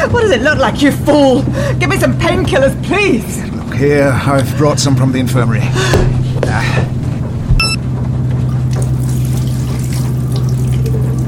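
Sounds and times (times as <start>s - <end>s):
speech: 0.0s - 6.9s
low steady hum: 0.0s - 11.2s
water pouring into a glass: 8.7s - 11.2s.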